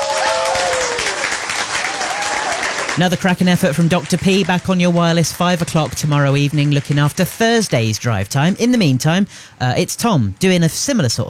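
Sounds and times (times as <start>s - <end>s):
applause: 0.0s - 8.1s
speech: 3.0s - 11.2s.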